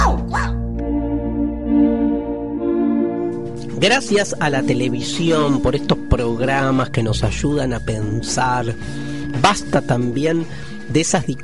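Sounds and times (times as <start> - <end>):
dog giving high-pitched barks: 0.0 - 0.6
steady tonal musical drone: 0.6 - 11.0
speech: 3.8 - 11.4.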